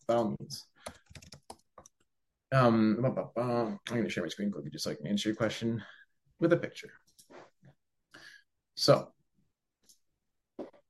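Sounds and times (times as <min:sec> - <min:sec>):
speech: 0:00.1 - 0:01.0, 0:02.5 - 0:07.0, 0:08.8 - 0:09.2
typing on a computer keyboard: 0:00.8 - 0:02.0.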